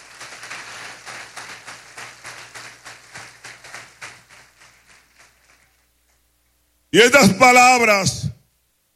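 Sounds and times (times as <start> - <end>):
church audience clapping: 0.0 - 6.2
faint low hum: 0.0 - 8.9
speech: 6.9 - 8.2.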